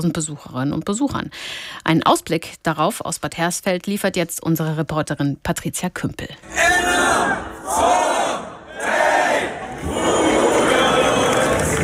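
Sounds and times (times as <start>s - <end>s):
speech: 0.0s - 8.0s
festival crowd cheering in a town: 6.5s - 11.8s.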